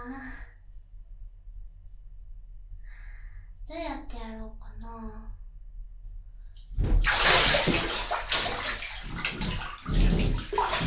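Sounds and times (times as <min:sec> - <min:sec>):
hot water pouring into a filling bathtub: 0:06.6 - 0:10.8.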